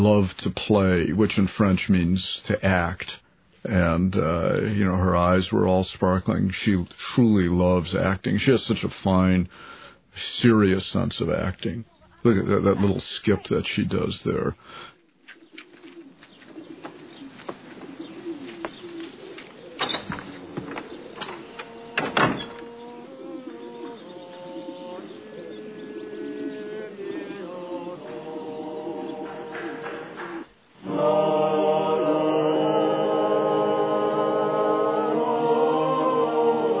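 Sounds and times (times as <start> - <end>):
speech: 0.0 - 14.9
pigeons cooing: 14.6 - 31.4
national anthem music: 20.9 - 36.7.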